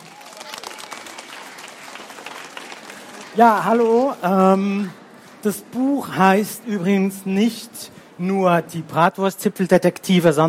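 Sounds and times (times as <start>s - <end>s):
audience applause: 0.0s - 4.2s
speech: 3.4s - 10.4s.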